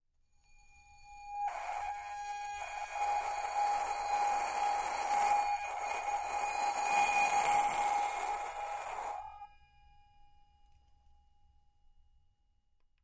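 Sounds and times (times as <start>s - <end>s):
bowed brass singing bowls: 1.4s - 9.5s.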